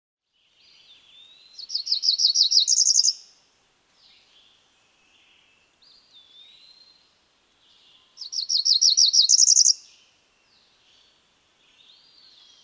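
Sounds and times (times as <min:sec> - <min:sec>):
female cerulean warbler singing buzzy phrases: 0:00.3 - 0:12.6.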